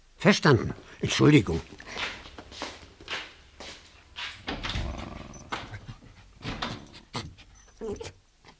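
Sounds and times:
speech: 0:00.2 - 0:02.2
small dog whimpering: 0:04.8 - 0:08.2.

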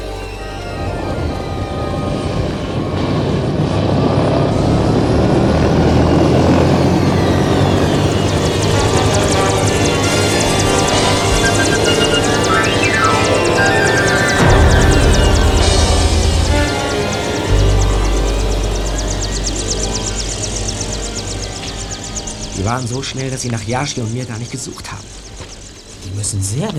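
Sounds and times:
rising helicopter whine as it powers up to lift off: 0:00.0 - 0:25.6
helicopter engine roaring as it takes off: 0:00.0 - 0:26.0
helicopter rotor chop: 0:04.6 - 0:23.5
speech: 0:22.7 - 0:25.2, 0:26.2 - 0:26.7.

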